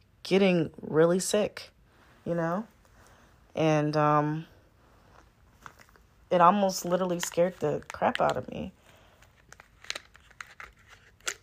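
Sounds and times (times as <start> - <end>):
speech: 0.3 - 2.7, 3.6 - 4.5, 6.3 - 8.8
plastic water bottle crinkling and crackling while handled: 5.5 - 6.1, 6.7 - 11.4.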